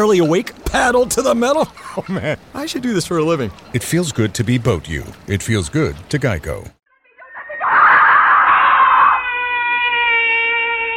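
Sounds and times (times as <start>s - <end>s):
speech: 0.0s - 6.8s
person screaming: 7.2s - 10.9s.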